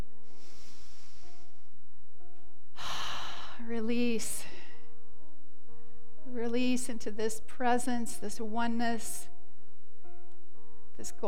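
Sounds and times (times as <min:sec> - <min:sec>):
slow deep inhaled breath during a guided meditation: 0:00.2 - 0:01.6
speech: 0:03.7 - 0:04.6, 0:06.4 - 0:09.3, 0:11.0 - 0:11.2.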